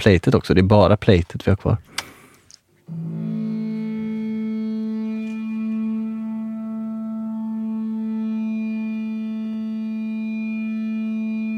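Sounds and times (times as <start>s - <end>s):
speech: 0.0s - 1.9s
sustained audio feedback added to a music recording: 2.9s - 11.5s.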